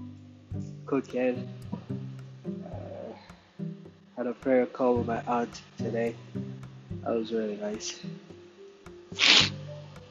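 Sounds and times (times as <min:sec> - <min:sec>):
speech: 0:00.9 - 0:01.6, 0:04.2 - 0:08.2, 0:09.2 - 0:09.6
sharp sneeze from allergies: 0:09.2 - 0:09.6.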